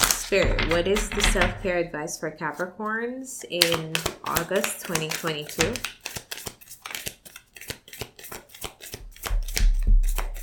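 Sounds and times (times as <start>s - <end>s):
tarot cards being shuffled: 0.0s - 1.6s, 3.6s - 10.4s
speech: 0.3s - 6.0s.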